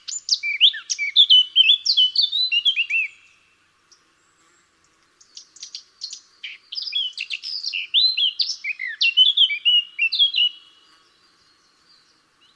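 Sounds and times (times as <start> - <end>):
Eurasian blackcap Sylvia atricapilla singing: 0.0 - 3.4, 5.2 - 10.8.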